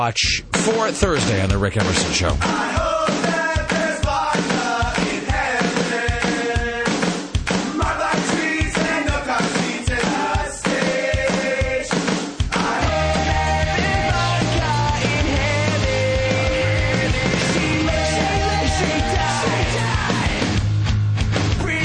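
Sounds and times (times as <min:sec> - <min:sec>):
heavier bass line: 0:00.0 - 0:03.0, 0:12.5 - 0:21.8
speech: 0:00.0 - 0:03.2
loud driving rock theme song on a radio show: 0:00.4 - 0:21.8.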